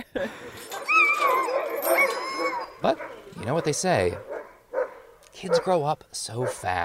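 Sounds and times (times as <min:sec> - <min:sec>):
speech: 0:00.2 - 0:00.4, 0:02.8 - 0:04.3, 0:05.4 - 0:06.8
sled dog puppy whimpering while held by a person: 0:00.7 - 0:03.6
sled dog puppy yipping: 0:00.8 - 0:05.7.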